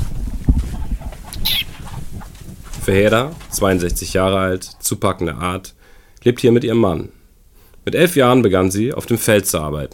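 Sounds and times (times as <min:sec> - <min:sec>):
chickens clucking in a henhouse beside a small farmhouse: 0:00.0 - 0:05.7
chicken squawk in a henhouse: 0:00.5 - 0:02.3
speech: 0:02.9 - 0:07.2, 0:07.8 - 0:09.9.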